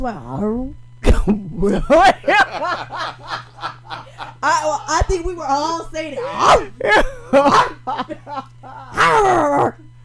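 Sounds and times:
speech: 0:00.0 - 0:03.5, 0:04.4 - 0:09.8
steady low hum: 0:00.0 - 0:10.0
laughter: 0:01.2 - 0:09.2
dog barking and yelping: 0:06.2 - 0:06.7, 0:07.4 - 0:07.8.

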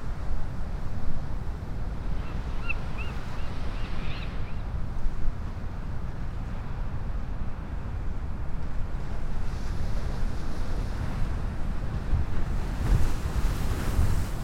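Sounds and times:
wind noise: 0:00.0 - 0:14.4
Ocean waves washing against the tip of a jetty at a river mouth: 0:00.1 - 0:14.4.

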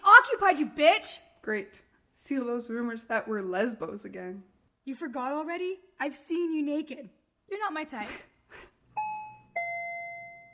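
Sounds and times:
speech: 0:00.2 - 0:08.7
struck warning bell tones: 0:09.0 - 0:10.5.

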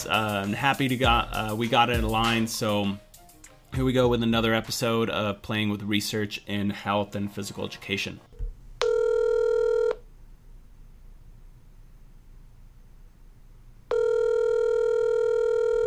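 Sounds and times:
speech: 0:00.0 - 0:03.1, 0:03.7 - 0:08.3
telephone dial tone: 0:08.8 - 0:10.0, 0:13.9 - 0:15.8.

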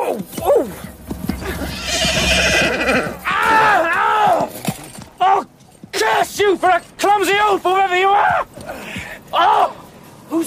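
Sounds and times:
clatter of horse hooves: 0:00.0 - 0:10.4
horse whinnying as it bolts across the fields: 0:01.3 - 0:05.0.

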